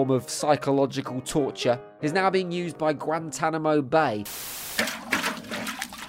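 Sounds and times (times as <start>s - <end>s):
speech: 0.0s - 4.9s
water pouring and splashing: 4.3s - 6.0s.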